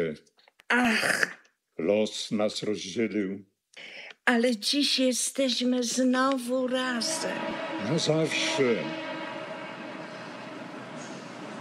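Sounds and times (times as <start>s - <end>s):
speech: 0.0s - 9.1s
train rolling by with a steady loud rumble: 6.6s - 11.6s
faint humming tone: 6.8s - 11.6s.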